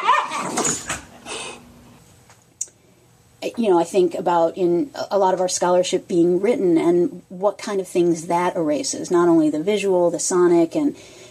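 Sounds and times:
dogs scuffling and playing with yips, whines and growls: 0.3 - 1.2
speech: 0.6 - 0.9, 3.4 - 11.2.

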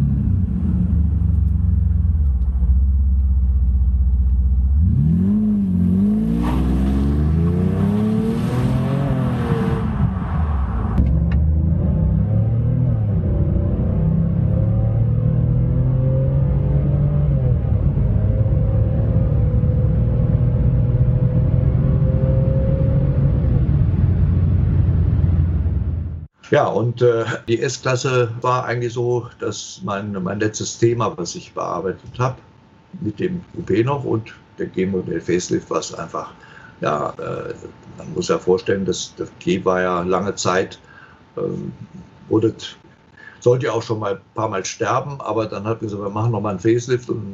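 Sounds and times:
7-liter AMG V12 car engine with AMG exhaust idling and revving: 0.0 - 26.3
speech: 26.6 - 42.8, 43.4 - 47.3.

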